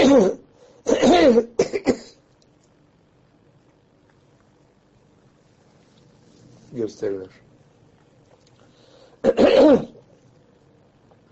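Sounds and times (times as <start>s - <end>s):
single harsh cough: 0.0s - 2.2s, 9.2s - 10.0s
speech: 0.2s - 1.7s, 6.8s - 7.4s, 9.7s - 10.0s.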